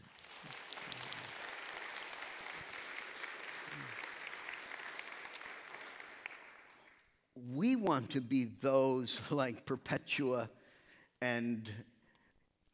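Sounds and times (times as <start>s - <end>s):
sustained applause from a sizable audience: 0.0s - 7.0s
speech: 7.4s - 10.6s, 11.2s - 11.9s.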